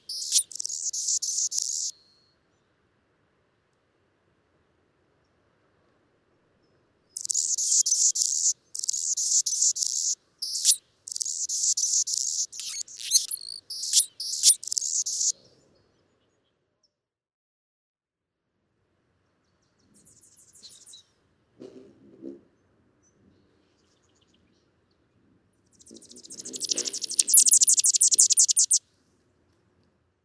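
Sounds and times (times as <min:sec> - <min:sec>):
Anna's hummingbird buzzing song: 0:00.0 - 0:01.9, 0:07.2 - 0:15.3, 0:26.4 - 0:28.8
thin high Anna's hummingbird notes: 0:00.1 - 0:01.9, 0:07.2 - 0:15.3.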